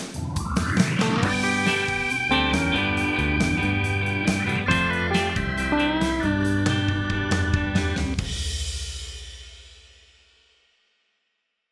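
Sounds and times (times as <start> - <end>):
short instrumental podcast theme song with steady beat and layered melodic parts: 0.0 - 8.5.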